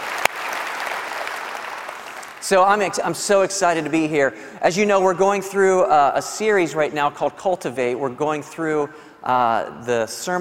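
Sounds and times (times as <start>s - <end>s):
church audience applause: 0.0s - 2.4s
speech: 2.5s - 10.3s.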